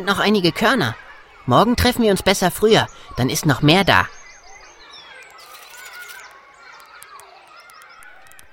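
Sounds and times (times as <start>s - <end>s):
speech: 0.0s - 4.2s
chorus of small birds and sparrows chirping and twittering: 2.2s - 8.5s.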